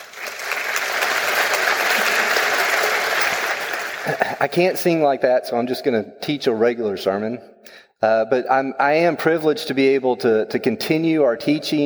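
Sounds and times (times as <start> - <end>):
audience applauding a choir in a large room: 0.0 - 4.5
speech: 4.0 - 11.8.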